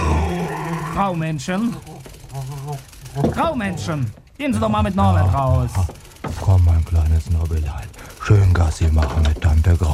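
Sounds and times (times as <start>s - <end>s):
dog growling: 0.0s - 4.2s
speech: 1.0s - 9.9s.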